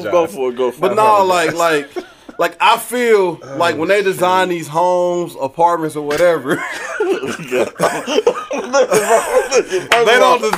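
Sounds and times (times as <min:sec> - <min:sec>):
laughter: 0:00.0 - 0:02.9, 0:06.1 - 0:10.5
speech: 0:00.0 - 0:10.5
throaty coughs: 0:06.5 - 0:09.6.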